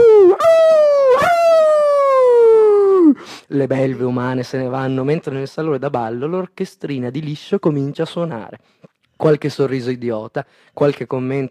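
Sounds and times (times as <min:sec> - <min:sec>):
person howling like a wolf: 0:00.0 - 0:03.2
speech: 0:03.5 - 0:11.4.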